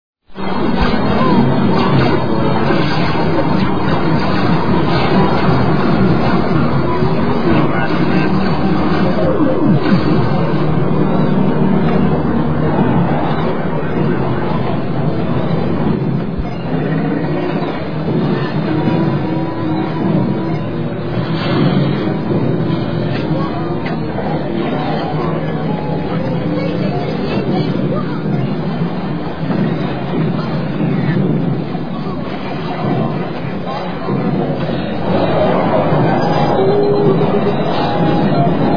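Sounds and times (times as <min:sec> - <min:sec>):
ambient arcade background noise: 0:00.3 - 0:38.7.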